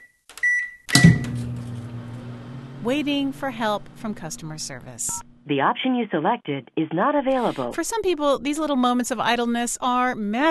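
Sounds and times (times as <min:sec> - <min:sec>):
microwave oven electronic beep: 0:00.0 - 0:02.6
microwave oven clunk as it starts: 0:00.9 - 0:04.1
microwave oven running with a steady low electric hum: 0:00.9 - 0:05.4
speech: 0:02.8 - 0:10.4.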